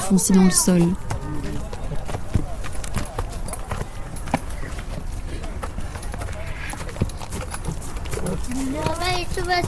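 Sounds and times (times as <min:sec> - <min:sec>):
horse hooves clip-clopping as the horse shifts around: 0:00.0 - 0:09.6
speech: 0:00.1 - 0:01.1.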